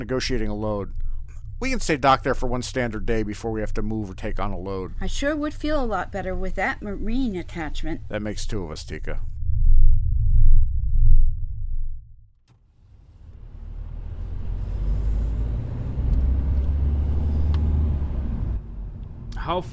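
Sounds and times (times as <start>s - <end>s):
speech: 0.0s - 1.0s, 1.6s - 9.4s, 19.5s - 19.7s
car engine rumble on the road: 0.0s - 19.7s
road and traffic noise: 12.8s - 19.7s.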